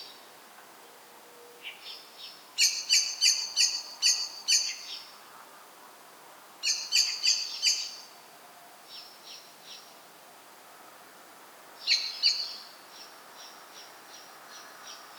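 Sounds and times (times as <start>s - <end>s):
common blackbird Turdus merula giving chink calls: 1.6s - 5.1s, 6.6s - 8.1s, 11.8s - 15.1s.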